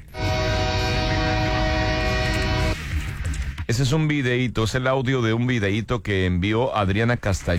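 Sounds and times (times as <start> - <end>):
train bound for Calexico sounding a horn blast: 0.0 - 2.8
heavy rail rumble: 0.0 - 2.9
speech: 3.7 - 7.5.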